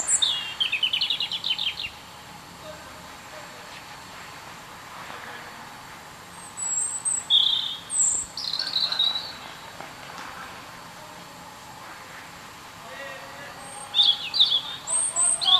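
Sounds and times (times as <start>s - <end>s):
European robin Erithacus rubecula singing: 0.0s - 3.6s, 5.2s - 9.8s, 12.8s - 15.5s.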